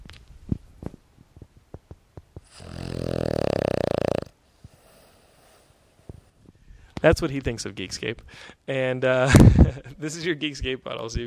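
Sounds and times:
dog snoring: 2.4 - 5.7
dog breathing: 2.4 - 6.9
speech: 7.0 - 11.2.

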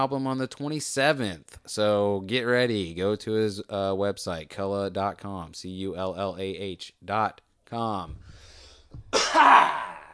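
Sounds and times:
speech: 0.0 - 10.0
rough throaty cough: 9.1 - 10.1.

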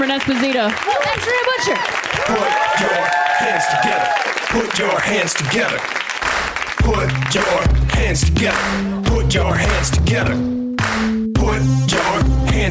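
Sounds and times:
speech: 0.0 - 6.0, 6.9 - 11.7
large audience applause at end of live show: 0.0 - 7.7
music: 6.7 - 12.6.

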